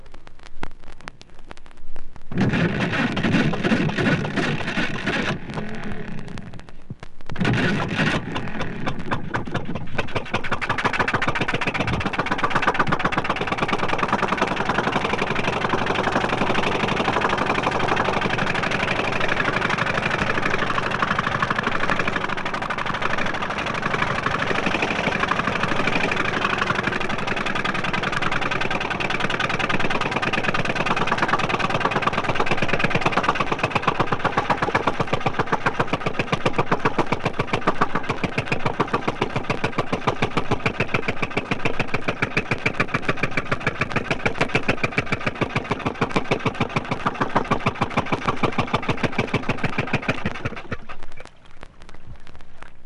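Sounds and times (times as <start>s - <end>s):
old electric-start St. Lawrence 3 to 4 horsepower inboard boat engine running: 2.4s - 6.7s, 7.4s - 51.9s.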